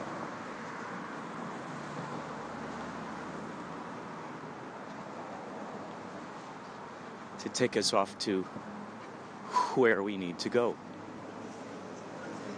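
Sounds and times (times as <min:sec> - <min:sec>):
street traffic of passing vehicles at a bus stop: 0:00.0 - 0:12.5
speech: 0:07.4 - 0:08.7, 0:09.8 - 0:10.9.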